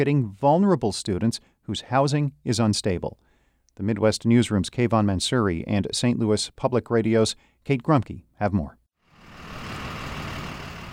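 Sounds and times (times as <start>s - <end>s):
speech: 0.0s - 8.8s
school bus and car engines idling: 9.2s - 10.9s.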